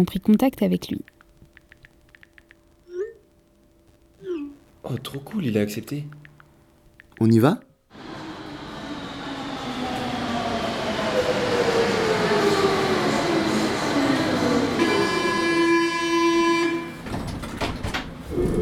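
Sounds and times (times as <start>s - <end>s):
speech: 0.0s - 1.2s, 4.8s - 6.2s, 7.2s - 7.7s
metro station noise: 0.0s - 17.2s
metro train rumbling into Balma metro station in France: 7.9s - 17.2s
metro train doors clattering: 14.8s - 18.2s.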